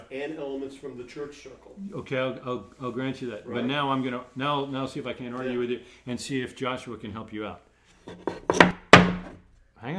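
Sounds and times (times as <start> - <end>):
speech: 0.1 - 8.7
coasters being flipped over on a table: 8.1 - 9.4.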